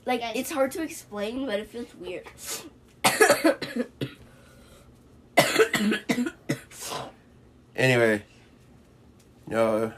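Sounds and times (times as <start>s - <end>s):
speech: 0.1s - 4.1s, 7.8s - 8.3s, 9.5s - 9.9s
harsh coughing: 3.0s - 4.2s, 5.4s - 7.2s.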